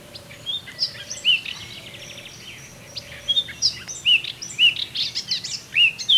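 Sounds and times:
Eurasian blackcap Sylvia atricapilla song: 0.0s - 6.1s.

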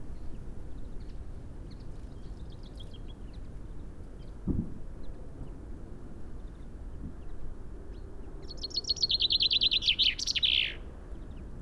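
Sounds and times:
common chaffinch Fringilla coelebs song of descending trilled notes: 8.6s - 10.8s.

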